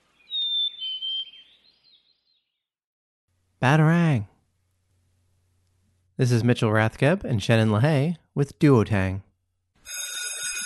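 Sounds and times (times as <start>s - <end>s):
high thin whistled bird call: 0.2s - 2.4s
speech: 3.6s - 4.3s, 6.2s - 9.3s.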